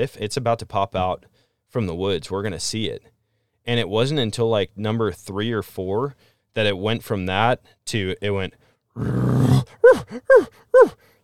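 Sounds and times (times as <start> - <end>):
speech: 0.0 - 11.1
voice imitating an elk bugle: 9.0 - 11.0.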